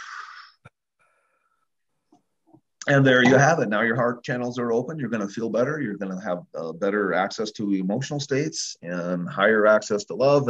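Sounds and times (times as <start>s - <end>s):
person taking a deep breath in and out during a guided relaxation exercise: 0.0s - 1.6s
speech: 2.9s - 10.4s.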